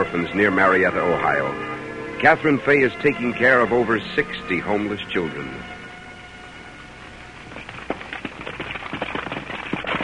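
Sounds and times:
speech: 0:00.1 - 0:05.7
horse hooves clopping: 0:06.2 - 0:10.0
horse-drawn wagon wheels rumbling: 0:06.9 - 0:10.0.

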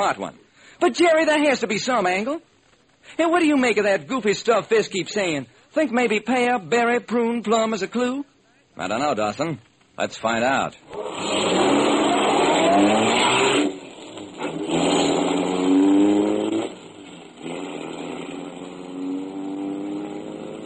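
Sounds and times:
speech: 0:00.0 - 0:11.4
car engine driving out toward a greenhouse: 0:10.9 - 0:20.6.

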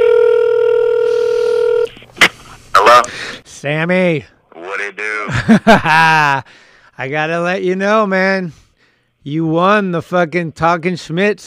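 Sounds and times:
steady electronic telephone tone: 0:00.0 - 0:01.9
speech: 0:03.6 - 0:08.6, 0:09.2 - 0:11.4
laughter: 0:05.3 - 0:06.5.

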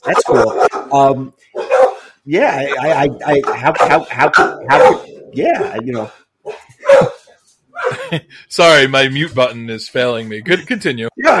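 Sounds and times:
speech: 0:00.0 - 0:01.5, 0:02.3 - 0:06.2, 0:08.1 - 0:11.3
dogs barking: 0:00.0 - 0:08.1
laughter: 0:07.8 - 0:08.5.

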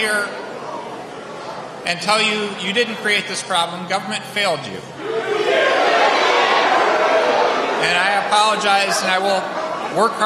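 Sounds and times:
speech: 0:00.0 - 0:00.4, 0:01.8 - 0:05.7, 0:07.8 - 0:10.2
angry crowd yelling and shouting back at a speaker: 0:05.0 - 0:10.2.

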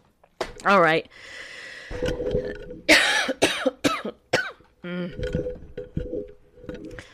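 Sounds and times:
speech: 0:00.6 - 0:03.0
person coughing: 0:02.9 - 0:04.6.

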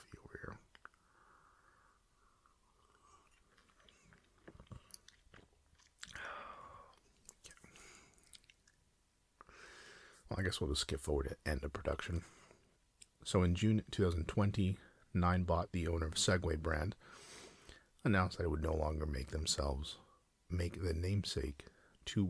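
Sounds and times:
person slurping a hot drink: 0:01.5 - 0:08.7
speech: 0:10.3 - 0:12.4, 0:13.2 - 0:17.2, 0:18.0 - 0:22.2.

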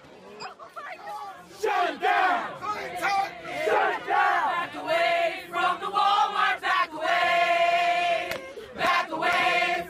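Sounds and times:
protest crowd chanting and shouting: 0:00.0 - 0:09.8.

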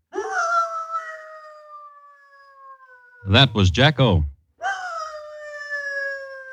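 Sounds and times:
three-quarter Irish setter dog whining and howling in Manchester Village Vermont: 0:00.1 - 0:03.2, 0:04.6 - 0:06.5
speech: 0:03.2 - 0:04.3.

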